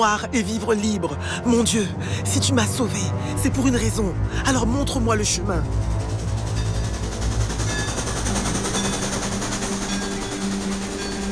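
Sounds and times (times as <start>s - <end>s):
speech: 0.0s - 6.0s
steam train chugging along the tracks: 3.4s - 11.3s.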